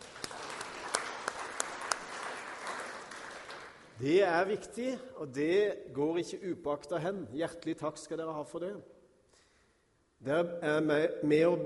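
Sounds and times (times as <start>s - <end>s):
church audience applauding: 0.0s - 4.0s
speech: 4.0s - 8.9s, 10.2s - 11.6s.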